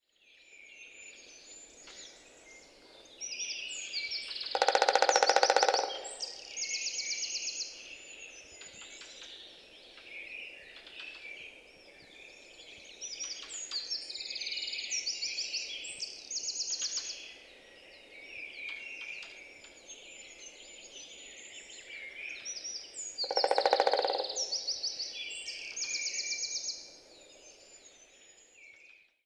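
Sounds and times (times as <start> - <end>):
three-toed woodpecker: 4.4 - 6.7, 23.1 - 25.0.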